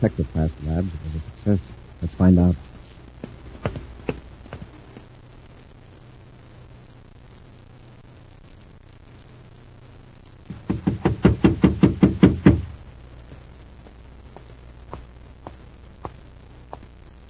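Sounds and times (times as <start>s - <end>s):
speech: 0.0s - 2.7s
hurried footsteps of a man coming around a corner: 3.2s - 5.1s, 10.5s - 16.9s.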